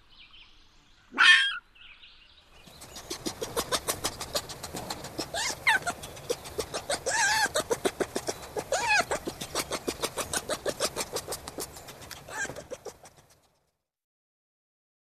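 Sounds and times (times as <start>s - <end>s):
red fox crying with rasping pulses: 1.1s - 1.6s, 2.9s - 13.4s.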